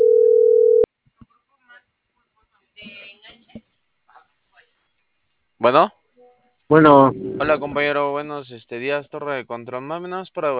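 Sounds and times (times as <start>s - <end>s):
telephone tone while placing a call: 0.0s - 0.9s
speech: 5.6s - 6.0s, 6.7s - 10.5s.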